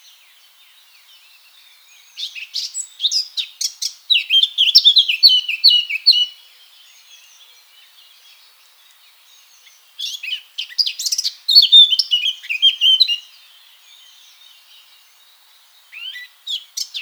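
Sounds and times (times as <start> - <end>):
Eurasian blackcap Sylvia atricapilla singing: 2.2 - 6.4, 10.0 - 13.4, 15.9 - 17.0.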